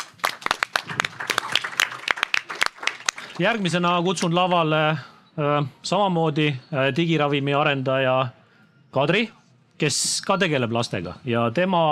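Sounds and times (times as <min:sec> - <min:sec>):
audience applause after a speaker's presentation: 0:00.0 - 0:04.0
speech: 0:03.4 - 0:11.9.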